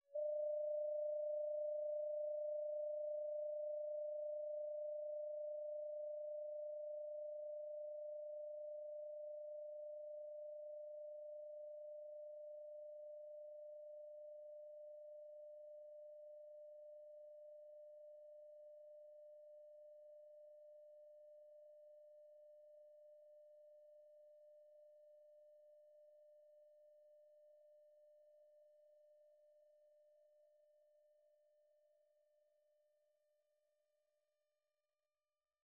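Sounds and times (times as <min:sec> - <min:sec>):
singing bowl: 0:00.0 - 0:26.2.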